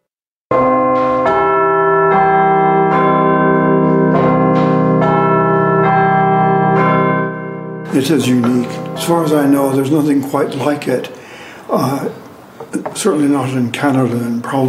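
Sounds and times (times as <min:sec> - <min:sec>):
church tower bells rung by mechanical apparatus: 0:00.5 - 0:11.4
speech: 0:07.9 - 0:14.6.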